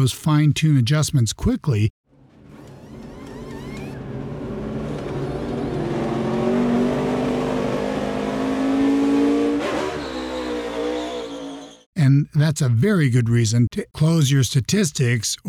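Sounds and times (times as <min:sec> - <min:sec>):
speech: 0:00.0 - 0:02.0, 0:12.5 - 0:15.4
race car engine revving and sweeping past: 0:02.8 - 0:11.8.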